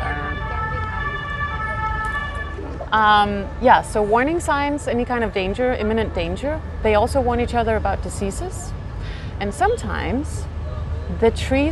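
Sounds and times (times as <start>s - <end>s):
emergency vehicle siren wailing in the city: 0.0s - 4.2s
city traffic rumble: 0.0s - 11.7s
speech: 2.9s - 8.8s, 9.4s - 10.5s, 11.1s - 11.7s.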